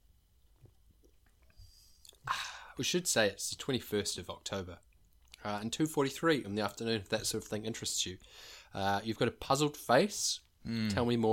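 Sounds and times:
soft wet mouth clicks: 0:00.6 - 0:02.2
breath: 0:01.5 - 0:02.8, 0:08.2 - 0:08.7
speech: 0:02.3 - 0:11.3.

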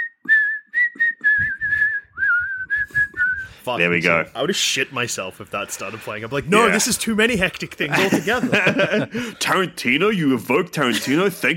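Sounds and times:
person whistling a slow haunting film-theme melody: 0:00.0 - 0:03.6
speech: 0:03.6 - 0:11.5
laughter: 0:06.5 - 0:09.7, 0:10.8 - 0:11.5.

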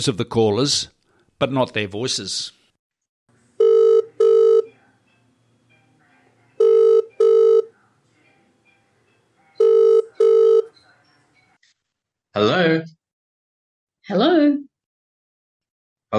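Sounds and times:
speech: 0:00.0 - 0:02.6, 0:12.4 - 0:13.0, 0:14.1 - 0:14.6
telephone ringing in a double-burst pattern: 0:03.6 - 0:04.7, 0:06.6 - 0:07.7, 0:09.1 - 0:10.8.

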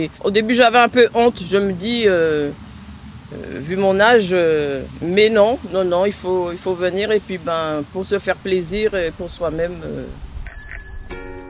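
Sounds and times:
speech: 0:00.0 - 0:02.6, 0:03.3 - 0:10.3
bicycle bell ringing as a stop signal for cyclists: 0:10.4 - 0:11.4.

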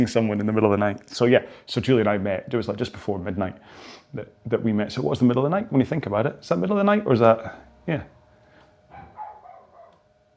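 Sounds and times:
speech: 0:00.0 - 0:08.2
dog barking outdoors: 0:08.9 - 0:10.1.

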